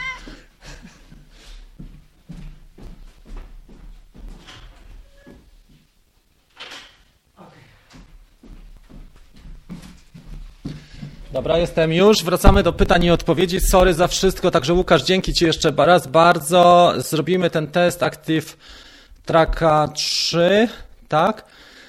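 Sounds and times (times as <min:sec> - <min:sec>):
restless female cat meowing to be let out: 0:00.0 - 0:00.4
speech: 0:11.4 - 0:21.7.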